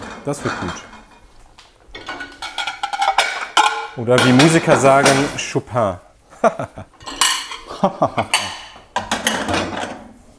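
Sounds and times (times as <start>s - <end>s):
dishes clattering and clinking on a table: 0.0s - 5.5s, 7.0s - 10.1s
speech: 0.2s - 0.9s, 4.0s - 7.0s, 7.8s - 8.4s
laughter: 6.3s - 7.0s, 7.7s - 8.6s.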